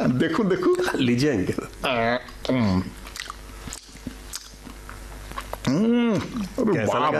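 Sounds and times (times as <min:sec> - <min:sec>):
speech: 0:00.1 - 0:03.0, 0:05.7 - 0:07.1
person eating a sandwich: 0:02.2 - 0:05.8.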